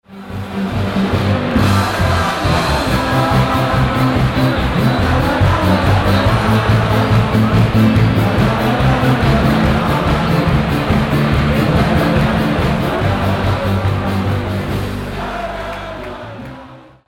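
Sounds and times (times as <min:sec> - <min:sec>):
Oktoberfest festival tent crowd in Munich: 0:00.0 - 0:17.0.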